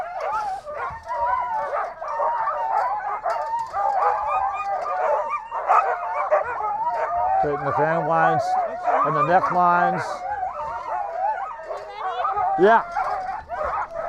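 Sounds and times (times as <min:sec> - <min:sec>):
pack of excited sled dogs barking, yipping and whining before a mushing run: 0:00.0 - 0:14.0
speech: 0:07.4 - 0:10.3, 0:12.6 - 0:13.0.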